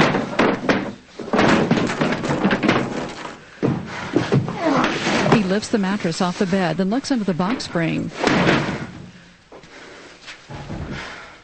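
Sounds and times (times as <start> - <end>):
dresser drawers yanked open and flung onto the floor: 0.0 - 5.6, 7.4 - 9.1
speech: 5.5 - 8.7.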